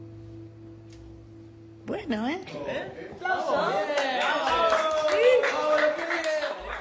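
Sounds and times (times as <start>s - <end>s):
speech: 1.9s - 4.4s
lively crowd cheering: 3.2s - 6.7s
people clapping: 3.4s - 6.7s.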